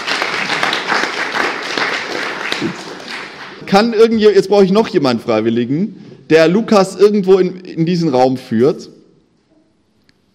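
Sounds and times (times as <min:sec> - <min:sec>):
audience applauding: 0:00.0 - 0:03.9
speech: 0:03.7 - 0:09.0.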